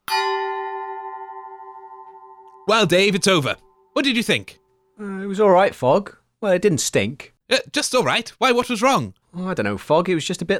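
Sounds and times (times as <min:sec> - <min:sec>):
bell ringing: 0:00.0 - 0:04.0
speech: 0:02.7 - 0:10.5.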